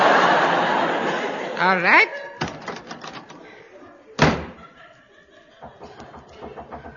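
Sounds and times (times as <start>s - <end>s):
people chuckling: 0.0s - 6.9s
speech: 1.6s - 2.4s
sharp loud knock on a wooden door: 5.6s - 6.9s.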